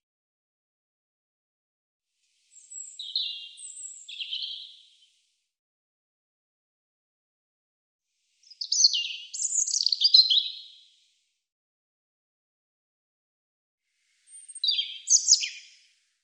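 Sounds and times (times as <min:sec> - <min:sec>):
European robin singing: 0:02.5 - 0:05.0, 0:08.4 - 0:10.8, 0:14.3 - 0:15.8.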